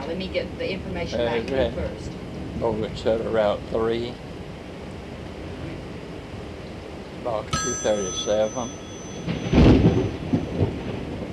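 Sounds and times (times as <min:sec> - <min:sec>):
speech: 0:00.1 - 0:04.3, 0:07.2 - 0:09.6
thunder from lightning during a storm: 0:09.2 - 0:11.3.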